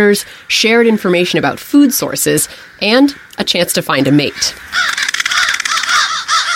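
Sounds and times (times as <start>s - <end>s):
speech: 0.0s - 5.0s
many crows cawing at a roost: 4.2s - 6.5s.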